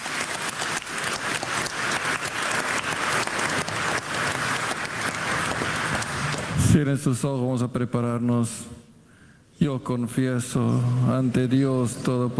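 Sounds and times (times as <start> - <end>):
crowd applauding in a reverberant room: 0.0 - 6.8
speech: 6.8 - 8.8, 9.6 - 12.3.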